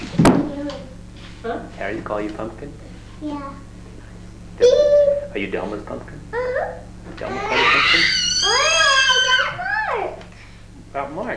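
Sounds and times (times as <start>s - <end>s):
speech: 0.7s - 3.7s, 4.6s - 8.8s, 10.9s - 11.3s
toddler screaming in frustration: 7.2s - 10.1s.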